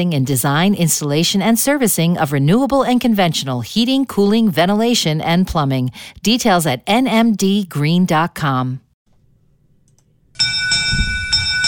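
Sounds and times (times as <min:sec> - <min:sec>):
speech: 0:00.0 - 0:08.8
derby bell ringing: 0:10.4 - 0:11.6.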